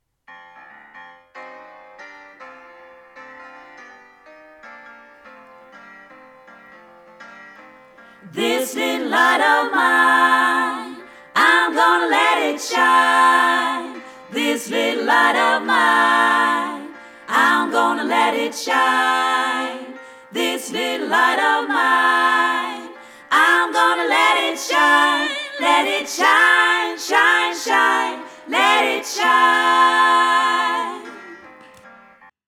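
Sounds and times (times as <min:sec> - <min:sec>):
all voice parts singing a gospel song: 0:08.2 - 0:31.6.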